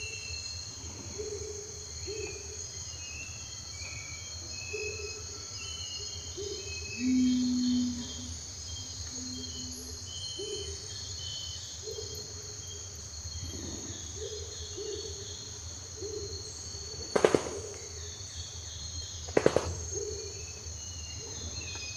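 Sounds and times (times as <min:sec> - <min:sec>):
insect drone: 0:00.0 - 0:21.9
Long-wattled umbrellabird giving a deep humming boom: 0:17.1 - 0:18.2, 0:19.2 - 0:20.4.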